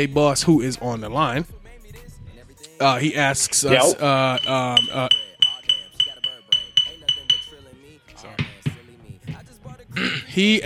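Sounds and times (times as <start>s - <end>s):
speech: 0.0s - 2.1s, 2.8s - 5.2s, 10.4s - 10.6s
small glass crack vials clinking together: 3.7s - 7.6s.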